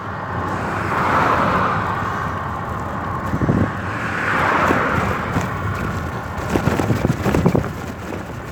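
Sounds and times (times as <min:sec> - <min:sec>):
Mercedes bus passing in traffic: 0:00.0 - 0:08.5
traffic noise: 0:00.0 - 0:08.5
wind: 0:00.0 - 0:08.5.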